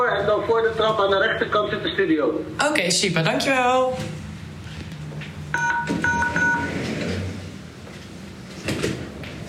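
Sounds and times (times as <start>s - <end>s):
speech: 0.1s - 4.2s
short series of electronic beeps: 5.6s - 6.7s.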